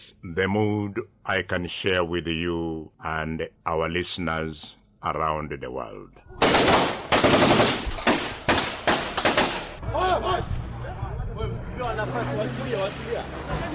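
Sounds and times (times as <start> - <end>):
speech: 0.0 - 7.8, 12.0 - 13.7
bursts of live gunfire shot into the air by a crowd: 6.4 - 9.8
steady murmur of many voices: 9.8 - 13.7.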